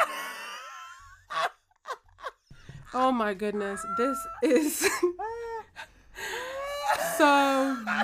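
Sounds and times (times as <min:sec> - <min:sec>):
laughter: 0:00.2 - 0:05.9, 0:06.5 - 0:08.0
woman yelling at someone: 0:03.0 - 0:04.7
speech: 0:03.0 - 0:05.5, 0:07.2 - 0:08.0.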